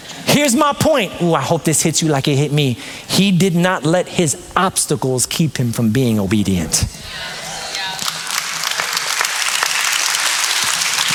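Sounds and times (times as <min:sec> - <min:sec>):
speech: 0:00.4 - 0:07.4
audience clapping in a large room: 0:07.7 - 0:11.1.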